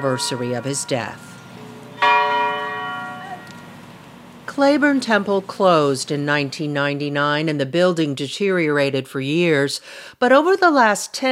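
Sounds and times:
speech: 0:00.0 - 0:01.3, 0:04.6 - 0:11.3
historic church bell ringing: 0:00.0 - 0:05.9.

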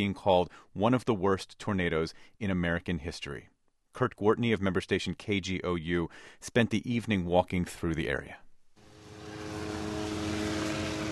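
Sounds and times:
speech: 0:00.0 - 0:08.4
helicopters hovering over tornado destruction in a town: 0:08.9 - 0:11.0.

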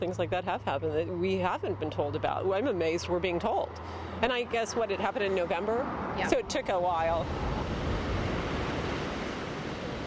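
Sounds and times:
speech: 0:00.0 - 0:07.7
muted sea waves washing near a pier: 0:03.7 - 0:10.0.

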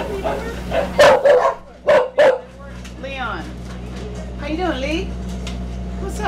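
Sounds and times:
dog barking inside a small cage in a mobile spay clinic: 0:00.0 - 0:02.5
speech: 0:00.2 - 0:01.0.

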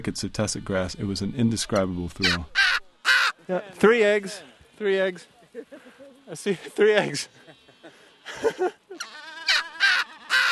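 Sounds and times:
speech: 0:00.0 - 0:02.6, 0:03.5 - 0:09.1
seabird colony calls of albatrosses and penguins: 0:02.2 - 0:03.4, 0:09.4 - 0:10.4
laughter: 0:05.3 - 0:09.2.

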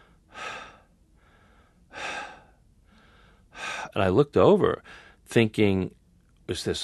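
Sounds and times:
labored asthmatic raspy breathing: 0:00.0 - 0:04.0
speech: 0:03.9 - 0:06.8.

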